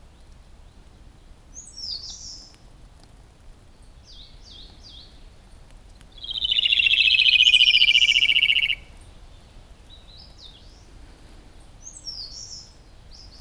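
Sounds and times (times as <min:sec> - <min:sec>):
Rufous-tailed robin Larvivora sibilans buzzy descending trill: 0:06.2 - 0:08.8
soft high chirps: 0:06.2 - 0:09.0.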